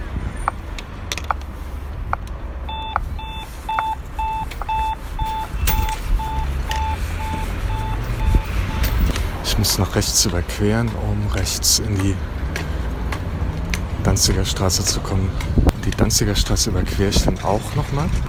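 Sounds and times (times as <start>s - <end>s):
low traffic rumble: 0.0s - 18.2s
pedestrian traffic light signal beeping on a city street: 2.6s - 10.0s
speech: 9.6s - 12.3s, 14.1s - 18.2s.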